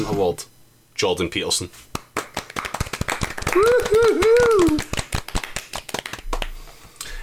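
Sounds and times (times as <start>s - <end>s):
speech: 0.0s - 1.9s
short round of applause with hand claps: 1.9s - 7.0s
person whooping: 3.4s - 5.0s.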